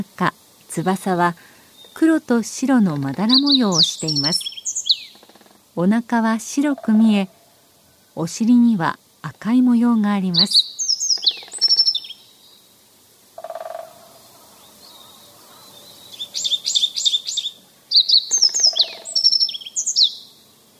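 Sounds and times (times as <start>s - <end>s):
speech: 0.0s - 4.5s, 5.8s - 7.4s, 8.2s - 10.7s
yellow bunting singing: 0.7s - 5.5s, 9.3s - 12.8s, 13.4s - 20.7s.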